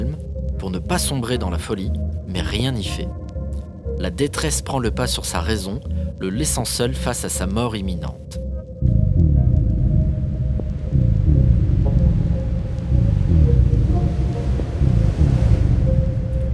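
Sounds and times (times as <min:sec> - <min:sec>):
speech: 0:00.6 - 0:03.2, 0:04.0 - 0:08.4
deep rumbling of water rising in a pond: 0:08.8 - 0:16.5.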